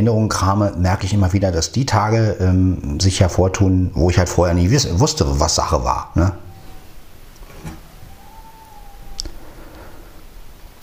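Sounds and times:
speech: 0.0 - 6.4
howl of neighbouring dogs: 5.6 - 10.6.

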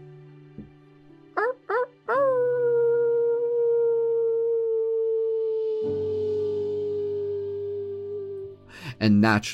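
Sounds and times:
person imitating a quiet wolf howl amongst a group: 1.4 - 8.7
low humming drone: 2.2 - 8.7.

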